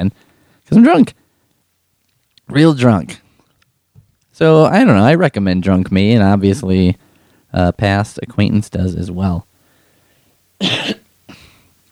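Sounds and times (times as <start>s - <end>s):
speech: 0.0s - 1.2s, 2.5s - 3.2s, 4.4s - 9.5s, 10.6s - 11.0s
person coughing: 10.6s - 11.6s.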